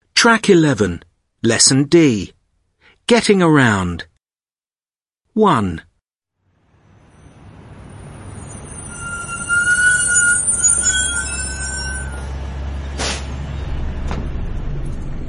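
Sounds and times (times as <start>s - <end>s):
speech: 0.2s - 2.4s, 3.1s - 4.1s, 5.4s - 5.9s
bus engine rumbling: 6.7s - 15.2s
bus brakes squealing: 6.8s - 15.2s
short hiss of air from a bus stopping: 13.0s - 13.3s.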